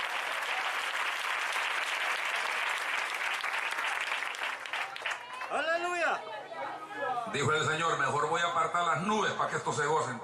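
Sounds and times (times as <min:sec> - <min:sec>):
large crowd applauding: 0:00.0 - 0:06.0
speech: 0:05.5 - 0:10.2.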